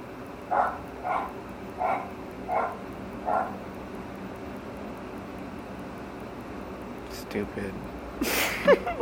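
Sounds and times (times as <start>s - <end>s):
constant low hum: 0.0s - 9.0s
dog barking: 0.5s - 3.6s
speech: 7.3s - 9.0s.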